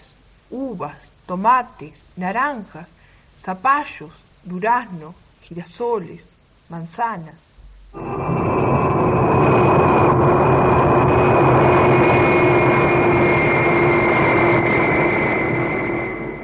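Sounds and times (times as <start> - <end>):
speech: 0.5 - 8.5
jet airliner taxiing on the runway after landing: 8.0 - 16.4.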